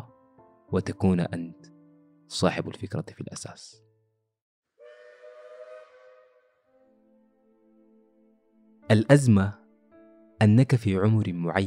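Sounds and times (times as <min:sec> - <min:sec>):
speech: 0:00.7 - 0:01.7, 0:02.3 - 0:03.8, 0:08.9 - 0:09.6, 0:10.4 - 0:11.6
train whistle blowing: 0:04.8 - 0:06.7.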